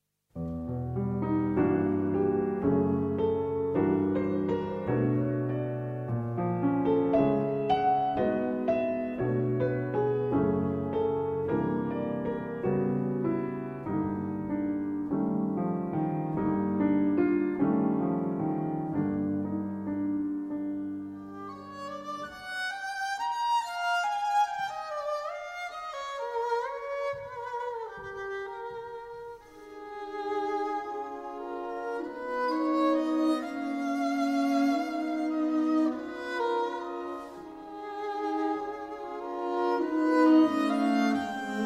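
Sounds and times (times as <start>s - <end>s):
piano, violin, viola and cello quartet playing a slow movement: 0.5s - 41.6s.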